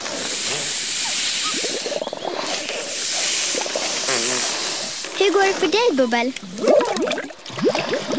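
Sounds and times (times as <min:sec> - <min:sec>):
balloons being blown up for party invitations by balloon post: 0:00.2 - 0:05.0
speech: 0:05.2 - 0:08.0.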